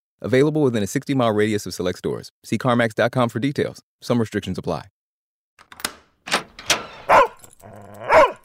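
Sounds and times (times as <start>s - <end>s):
speech: 0.2s - 5.0s
dog barking at its owner arriving home: 7.1s - 8.4s.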